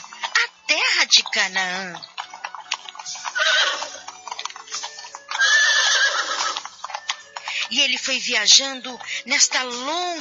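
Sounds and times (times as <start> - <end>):
horse hooves clip-clopping: 0.0 - 10.1
speech: 0.8 - 2.1, 7.7 - 10.1
horse whinnies: 2.6 - 7.9.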